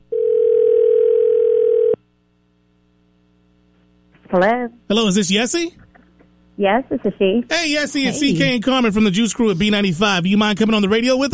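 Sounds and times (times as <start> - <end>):
telephone dial tone: 0.1 - 2.0
speech: 4.3 - 5.8, 6.6 - 11.3.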